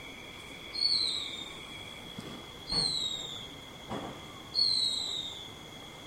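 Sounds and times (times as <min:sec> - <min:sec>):
constant high whine: 0:00.0 - 0:06.0
silvereye Zosterops lateralis vegetus giving plaintive high thin downward-sliding whistles: 0:00.8 - 0:01.5, 0:02.7 - 0:03.4, 0:04.6 - 0:05.5
faint thud: 0:03.9 - 0:04.2.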